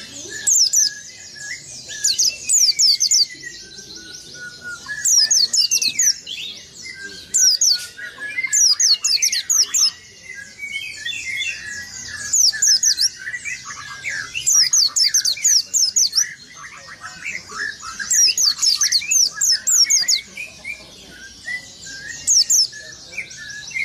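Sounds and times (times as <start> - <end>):
white-eye song of rapid high thin chirps and twittering: 0.0 - 23.8.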